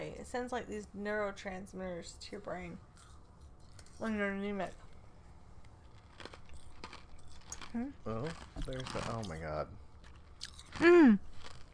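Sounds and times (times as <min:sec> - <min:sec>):
speech: 0:00.2 - 0:02.9, 0:04.0 - 0:04.9, 0:07.7 - 0:09.8, 0:10.8 - 0:11.3
chewing ice: 0:02.9 - 0:04.0, 0:05.7 - 0:11.7.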